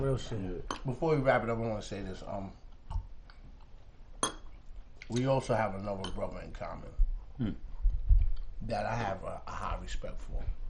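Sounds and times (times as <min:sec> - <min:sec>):
speech: 0:00.0 - 0:02.6, 0:05.1 - 0:07.7, 0:08.6 - 0:10.6
glasses clinking in a toast: 0:04.2 - 0:05.3, 0:06.0 - 0:06.4.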